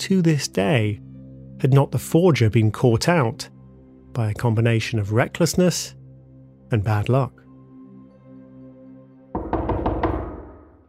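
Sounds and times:
speech: 0.0 - 3.5, 4.2 - 6.0, 6.7 - 7.4
firm knocks on a door: 9.4 - 10.8.

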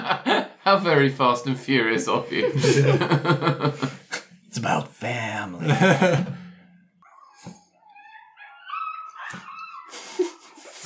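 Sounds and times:
laughter: 0.0 - 6.7, 9.9 - 10.8
speech: 0.1 - 6.4
small chihuahua whimpering: 7.0 - 10.8.

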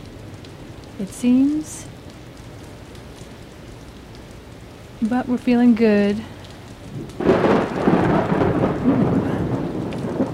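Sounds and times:
heavy rain from a storm pouring: 0.0 - 10.3
speech: 1.0 - 2.0, 5.0 - 6.3.

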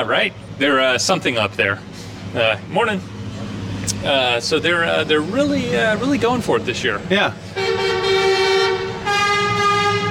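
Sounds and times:
speech: 0.0 - 3.2, 3.9 - 7.6
truck horns honking: 7.3 - 10.0.

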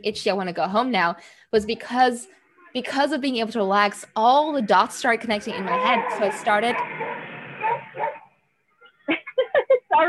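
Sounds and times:
speech: 0.0 - 7.0
dog barking: 5.9 - 8.3.

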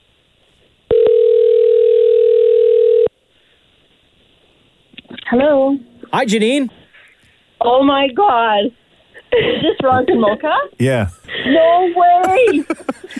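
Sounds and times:
telephone ring tone: 0.9 - 3.1
speech: 6.2 - 6.8, 7.7 - 13.1
laughter: 10.8 - 13.1.

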